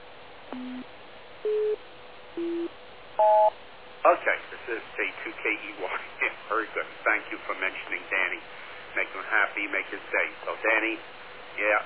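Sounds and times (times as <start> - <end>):
telephone line electronic tones after a hang-up: 0.5 - 0.8, 2.4 - 3.5
speech: 0.6 - 1.8, 4.1 - 11.8.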